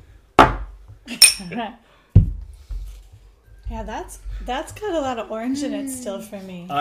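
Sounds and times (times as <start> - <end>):
drinking glasses clinking together in a toast: 1.2 - 1.5
speech: 1.4 - 1.9, 3.7 - 6.7.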